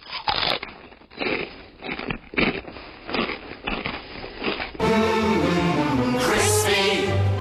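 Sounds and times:
crisps being bitten and chewed: 0.0s - 4.8s
music: 4.8s - 7.3s.

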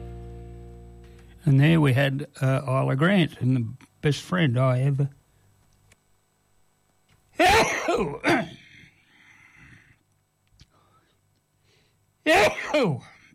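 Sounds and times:
speech: 1.4s - 5.2s, 7.4s - 8.6s, 12.2s - 13.1s
sneeze: 7.4s - 8.6s, 12.3s - 13.2s
faint exhale: 8.6s - 10.0s.

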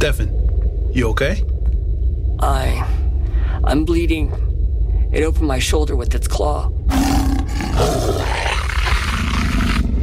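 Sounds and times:
speech: 0.0s - 1.5s, 2.4s - 3.0s, 3.6s - 4.5s, 5.1s - 7.9s
shapeshifting creature roaring as it turns into a wolf: 6.9s - 10.0s.

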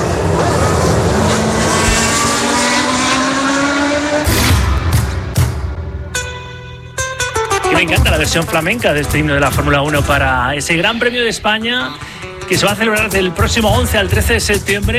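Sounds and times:
motorbike engine roaring: 0.0s - 6.1s
speech: 8.0s - 14.9s.

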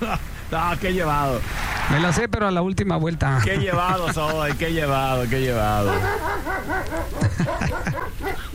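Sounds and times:
speech: 0.1s - 8.5s
laughter: 3.3s - 8.5s
person mimicking a dog with yelping barks: 5.8s - 8.5s.

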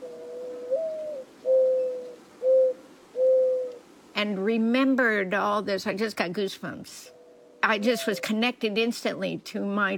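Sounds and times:
dove cooing: 0.0s - 4.0s, 7.1s - 8.4s
speech: 4.2s - 9.9s.

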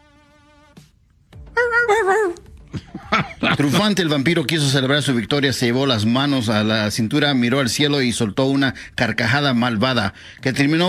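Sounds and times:
dog whimpering in fear while running away: 1.6s - 2.5s
speech: 1.6s - 2.8s, 3.4s - 10.8s
laughter: 1.6s - 4.3s.

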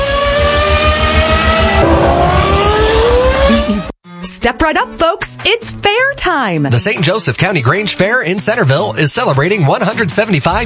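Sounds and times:
race cars accelerating and revving: 0.7s - 3.9s
speech: 4.4s - 10.6s.

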